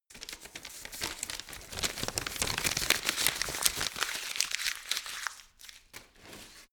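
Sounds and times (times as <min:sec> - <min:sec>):
paper crumpling: 0:00.1 - 0:06.7.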